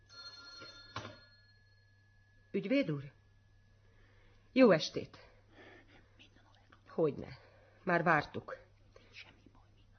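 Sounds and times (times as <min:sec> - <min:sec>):
telephone bell ringing: 0:00.0 - 0:02.5
speech: 0:02.6 - 0:03.2, 0:04.6 - 0:05.3, 0:07.0 - 0:08.6.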